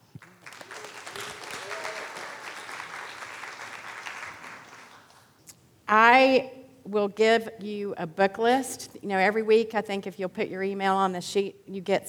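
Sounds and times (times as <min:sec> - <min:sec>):
audience applause: 0:00.0 - 0:05.3
speech: 0:05.9 - 0:12.0.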